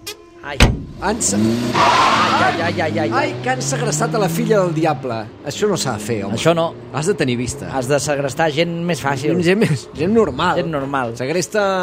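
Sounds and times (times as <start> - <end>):
car engine cranking and roaring as vehicle pulls away: 0.0 - 10.8
speech: 0.4 - 11.8
heavy thud of car trunk shutting: 0.6 - 1.1.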